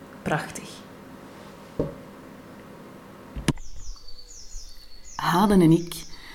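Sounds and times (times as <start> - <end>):
speech: 0.2 - 0.7, 5.2 - 6.1
faint high bird chirps: 3.5 - 6.3.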